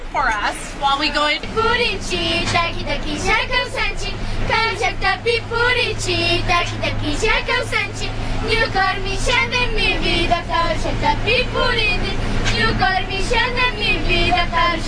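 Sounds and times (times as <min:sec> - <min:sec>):
indigenous women singing in Ecuador: 0:00.2 - 0:14.8.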